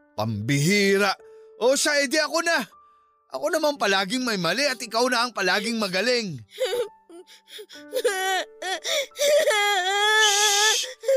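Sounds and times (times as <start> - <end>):
speech: 0.2 - 11.1
child crying and wailing: 6.5 - 11.1.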